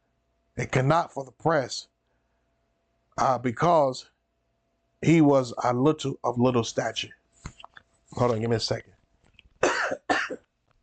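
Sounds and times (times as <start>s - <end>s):
speech: 0.6s - 1.9s, 3.2s - 4.1s, 5.0s - 7.2s, 8.1s - 8.9s
person coughing harshly: 9.6s - 10.5s.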